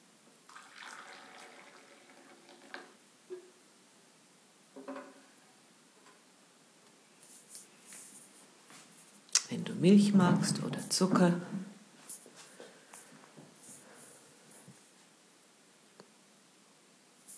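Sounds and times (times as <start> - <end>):
tea pouring into a teacup: 0.5 - 3.0
speech: 9.8 - 11.6.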